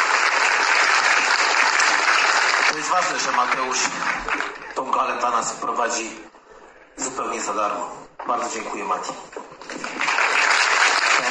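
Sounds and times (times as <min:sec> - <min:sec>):
audience applause at a gala: 0:00.0 - 0:04.8, 0:09.6 - 0:11.2
speech: 0:02.9 - 0:06.4, 0:07.0 - 0:09.4.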